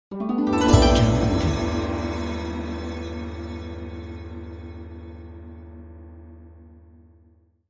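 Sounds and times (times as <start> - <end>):
Asian gong ident: 0.5 - 5.6.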